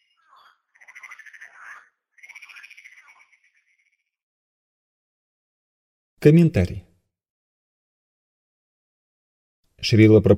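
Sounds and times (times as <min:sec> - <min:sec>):
frogs croaking in rattling pulsed calls: 0:00.0 - 0:04.2
speech: 0:06.2 - 0:06.9, 0:09.8 - 0:10.3.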